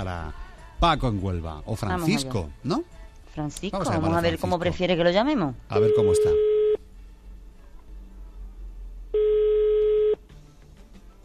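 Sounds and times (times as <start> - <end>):
speech: 0.0 - 6.5
faint hum: 0.0 - 11.2
electronic telephone ring tone on the line: 5.8 - 6.8, 9.2 - 10.2.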